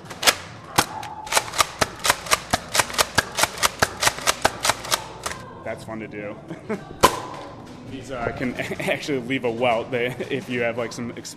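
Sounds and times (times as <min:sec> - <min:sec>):
foam dart blaster being fired and reloaded: 0:00.0 - 0:05.4
speech: 0:05.7 - 0:11.3.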